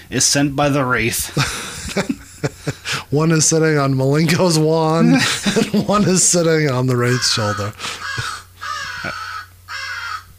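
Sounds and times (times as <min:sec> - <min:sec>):
speech: 0:00.1 - 0:02.2, 0:03.1 - 0:08.3
laughter: 0:01.3 - 0:03.0, 0:05.0 - 0:09.2
American crow cawing: 0:07.0 - 0:10.3.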